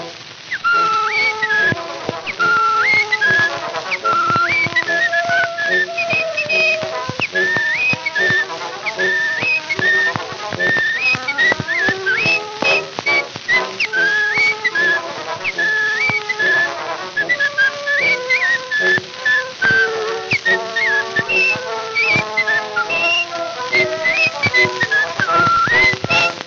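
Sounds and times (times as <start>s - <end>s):
steady rhythmic instrumental accompaniment: 0.0s - 26.4s
person whistling a bright bouncy melody: 0.5s - 26.4s.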